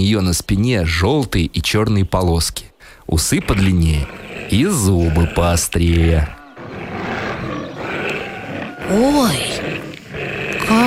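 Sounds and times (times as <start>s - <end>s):
speech: 0.0s - 6.4s, 8.9s - 9.7s
tiger roaring: 3.2s - 10.8s.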